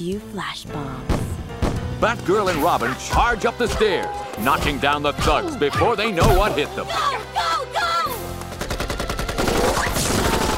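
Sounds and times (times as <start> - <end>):
speech: 0.0 - 1.2, 2.0 - 7.6
rapid automatic gunfire from thugs at the top of a stairway: 8.6 - 10.5.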